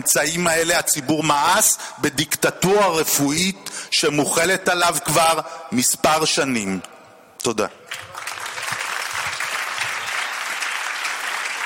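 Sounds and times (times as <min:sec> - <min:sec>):
speech: 0:00.0 - 0:08.1
crowd applauding: 0:07.9 - 0:11.6.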